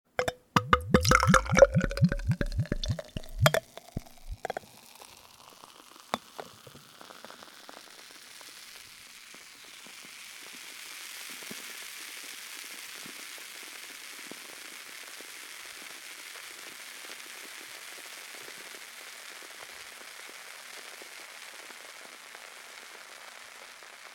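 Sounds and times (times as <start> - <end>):
beer pouring into glass: 0.2 - 6.9.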